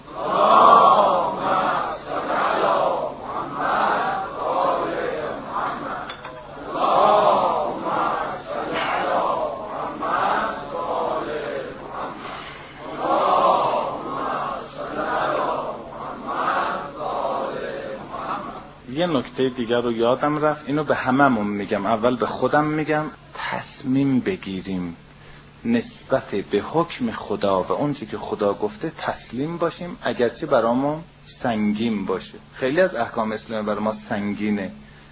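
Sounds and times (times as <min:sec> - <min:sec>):
large audience chanting salawat in unison: 0:00.0 - 0:18.7
speech: 0:19.1 - 0:25.0, 0:25.6 - 0:34.8.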